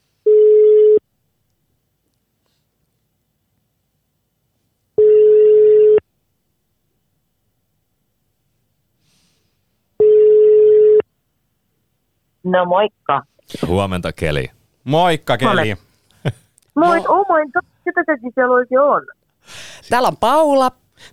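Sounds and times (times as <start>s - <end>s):
telephone line ringback tones as a phone call connects: 0.3s - 1.0s, 5.0s - 6.0s, 10.0s - 11.0s
speech: 12.5s - 21.1s.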